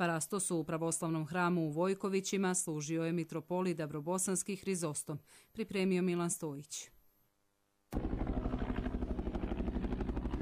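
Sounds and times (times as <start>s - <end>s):
speech: 0.0s - 7.0s
NATO helicopter rotor thudding over a village cemetery: 8.0s - 10.4s.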